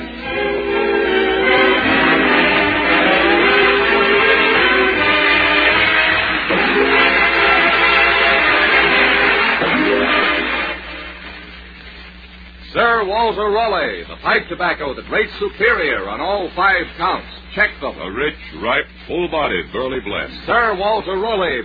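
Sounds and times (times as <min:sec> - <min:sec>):
train horn chord blaring: 0:00.0 - 0:11.1
speech: 0:13.3 - 0:21.6.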